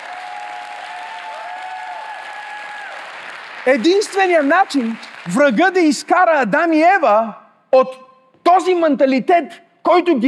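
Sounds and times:
audience applause during a sermon: 0.0 - 6.0
speech: 3.6 - 8.0, 8.6 - 10.2.

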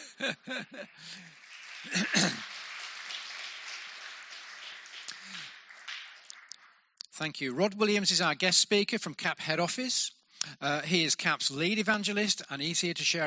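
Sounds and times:
people chuckling: 0.0 - 2.7
audience clapping: 0.0 - 7.2
speech: 0.2 - 2.6, 7.2 - 13.2.

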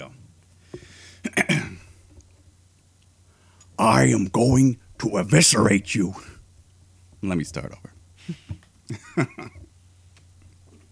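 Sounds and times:
person clearing throat: 1.2 - 1.9
speech: 3.8 - 6.4, 7.2 - 9.6.

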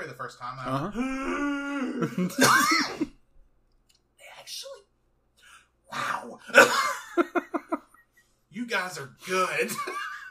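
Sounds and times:
speech: 0.2 - 3.1, 8.6 - 10.1
drawn-out male voiced groan: 0.7 - 3.1
soft cough or throat-clearing: 0.8 - 3.2
harsh coughs: 2.2 - 3.2
laughter: 6.5 - 8.0.

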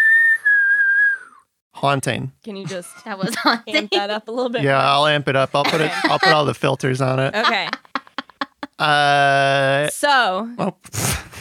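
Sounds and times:
person whistling a sustained note: 0.0 - 1.5
speech: 1.8 - 7.8, 8.8 - 11.1
laughter: 2.6 - 9.6.

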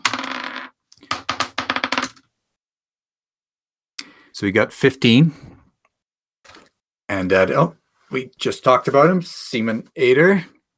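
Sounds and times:
dice clattering onto a hard surface: 0.0 - 2.3
speech: 4.4 - 5.5, 7.2 - 10.6.

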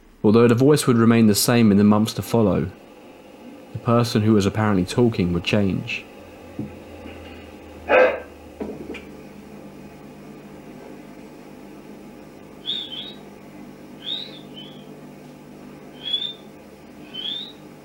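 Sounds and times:
quiet hum: 0.0 - 17.8
speech: 0.2 - 2.8, 3.8 - 6.8
dog barking and yapping: 7.9 - 8.3.

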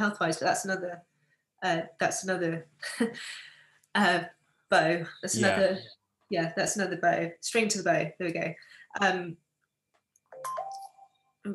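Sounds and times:
speech: 0.0 - 9.4
laughter: 5.4 - 5.6
phone ringing with a short electronic melodic chime: 10.3 - 11.2.

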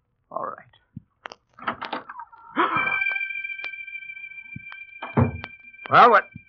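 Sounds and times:
door hinges creaking: 1.5 - 3.1
door shutting thud: 5.0 - 5.5
speech: 5.9 - 6.4.

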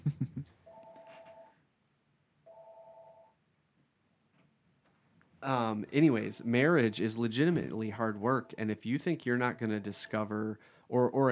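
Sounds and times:
telephone ringing with steady electronic tones for an incoming call: 0.7 - 1.6, 2.5 - 3.4
speech: 5.4 - 11.3.

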